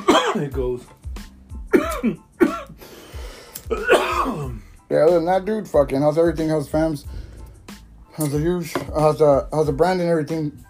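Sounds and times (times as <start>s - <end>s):
man coughing hard after a hit of smoke: 0.0s - 0.6s, 1.7s - 2.8s, 3.7s - 4.7s
speech: 0.4s - 1.0s, 2.0s - 2.3s, 3.7s - 7.3s, 8.2s - 10.6s
strained breaths: 2.7s - 3.7s, 7.0s - 8.0s.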